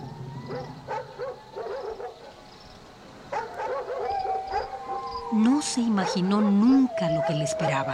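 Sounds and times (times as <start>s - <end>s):
dogs barking: 0.5s - 2.4s, 3.3s - 5.1s, 5.9s - 7.9s
speech: 5.3s - 7.9s.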